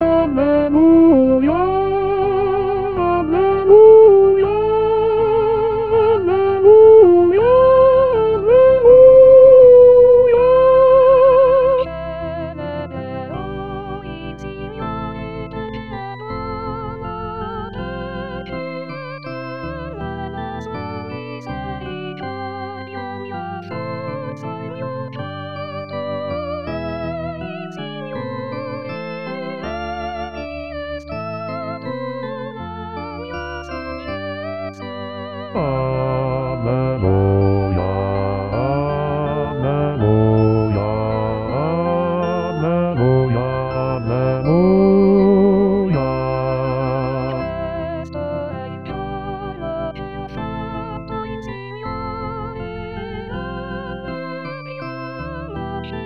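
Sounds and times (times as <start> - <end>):
bass voices singing a sacred canticle: 0.0 - 12.5, 35.6 - 48.0.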